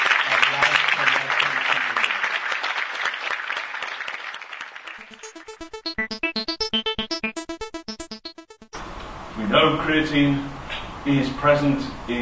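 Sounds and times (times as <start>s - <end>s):
audience applauding a Lifetime Achievement Award presentation: 0.0s - 6.0s
rhythmic bright music with a pulsing beat: 5.0s - 8.8s
speech: 9.6s - 12.2s.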